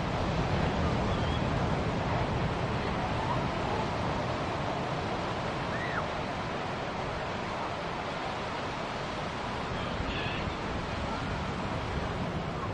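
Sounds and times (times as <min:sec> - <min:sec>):
seaside surf breaking waves: 0:00.0 - 0:12.7.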